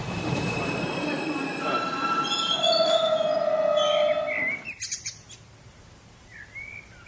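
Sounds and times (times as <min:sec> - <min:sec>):
passenger train rumbling along the rails: 0:00.0 - 0:04.8.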